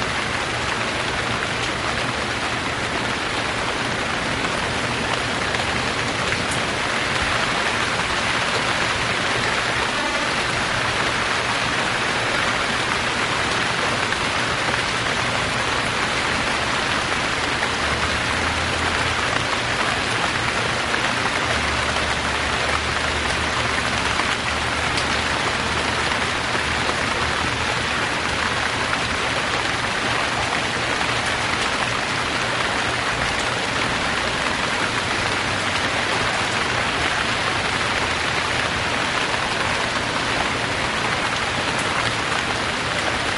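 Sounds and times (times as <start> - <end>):
dense rain pattering: 0.0 - 43.3.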